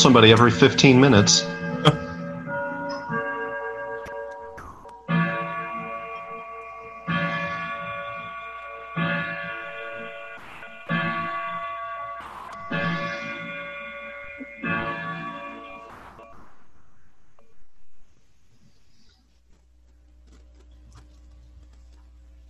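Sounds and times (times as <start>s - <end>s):
speech: 0.0s - 2.0s
grandfather clock chiming: 0.0s - 16.5s.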